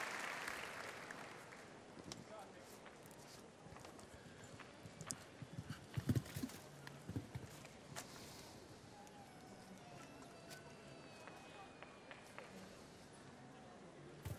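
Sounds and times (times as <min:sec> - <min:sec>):
faint crowd noise: 0:00.0 - 0:14.3
horse hooves clip-clopping: 0:03.8 - 0:07.7.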